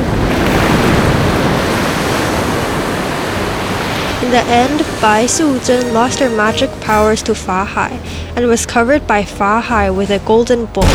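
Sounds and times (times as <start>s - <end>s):
rushing flood water with churning waves: 0.0s - 8.4s
speech: 4.3s - 10.9s.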